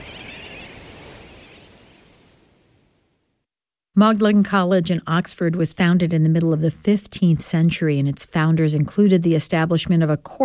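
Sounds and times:
colony of sooty terns calling: 0.0 - 1.8
speech: 4.0 - 10.4.

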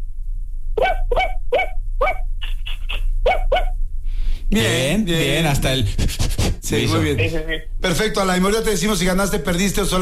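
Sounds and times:
person imitating a small fluffy dog barking: 0.8 - 3.7
speech: 4.5 - 9.9.

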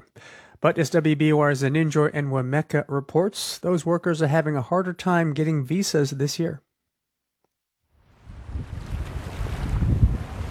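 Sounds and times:
speech: 0.2 - 6.7
ocean waves washing against the shore: 8.1 - 10.5
steady breeze gusting across the microphone: 8.2 - 10.5.

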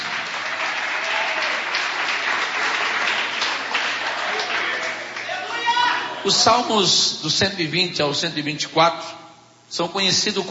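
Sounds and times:
large audience applauding: 0.0 - 6.0
speech: 6.3 - 10.5.

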